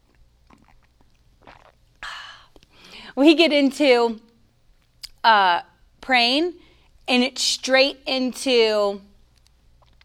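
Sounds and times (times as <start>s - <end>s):
sipping a drink: 0.1s - 3.0s
speech: 3.2s - 4.3s, 5.2s - 9.1s.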